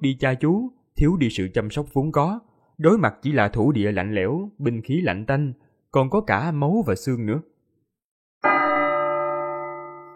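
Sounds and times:
speech: 0.0s - 7.5s
bell ringing out from a single strike: 8.4s - 10.1s.

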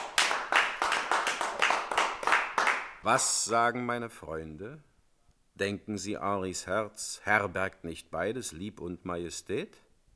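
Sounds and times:
small group clapping in a radio play: 0.0s - 3.3s
speech: 3.0s - 4.9s, 5.6s - 9.8s.

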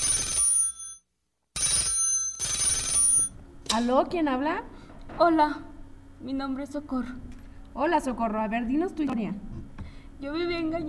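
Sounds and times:
telephone bell ringing for an incoming call on a call-in line: 0.0s - 1.0s, 1.6s - 3.4s
speech: 3.7s - 9.5s, 10.2s - 10.8s.

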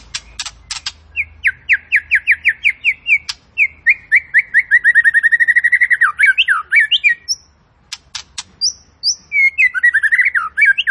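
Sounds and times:
white-rumped shama harsh clicks: 0.0s - 2.3s, 2.9s - 3.7s, 7.8s - 9.2s
white-rumped shama downslurred whistled notes: 0.0s - 7.5s, 8.6s - 10.8s.

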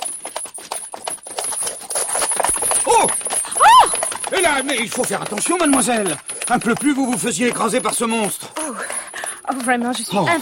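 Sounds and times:
horse trotting with clip-clopping hooves: 0.0s - 10.4s
speech: 4.4s - 8.8s, 9.5s - 10.4s.

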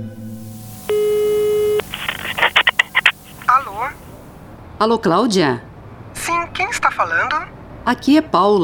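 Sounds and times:
telephone ringing tone of a call placed in Brazil: 0.2s - 4.3s
speech: 4.8s - 5.7s, 6.2s - 8.6s.

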